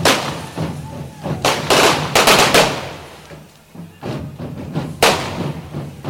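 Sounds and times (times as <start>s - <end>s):
faint voices: 0.0s - 6.0s
firecrackers bursting on a fire-breathing dragon effigy at a festival: 0.0s - 6.0s.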